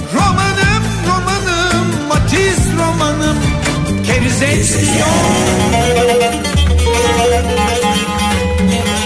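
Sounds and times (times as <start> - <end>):
Turkish folk song playing: 0.1 - 8.9
firm low bass line: 3.4 - 7.4.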